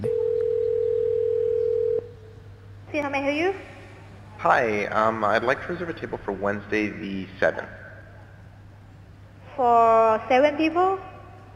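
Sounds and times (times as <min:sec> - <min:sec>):
phone call ringing tone as Google Assistant calls a restaurant: 0:00.0 - 0:02.1
faint low hum: 0:00.0 - 0:11.5
speech: 0:03.0 - 0:03.7, 0:04.4 - 0:07.8, 0:09.6 - 0:11.1.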